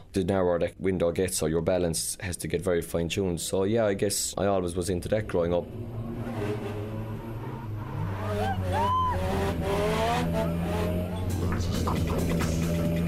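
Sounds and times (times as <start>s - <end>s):
speech: 0.2s - 6.2s
drifting car engine droning: 4.6s - 13.0s
tires squealing on drifting car: 5.4s - 13.0s.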